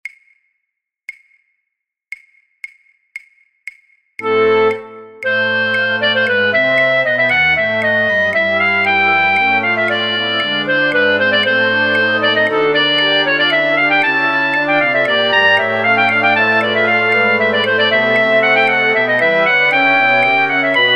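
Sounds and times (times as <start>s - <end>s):
flute orchestra playing: 4.3s - 20.9s.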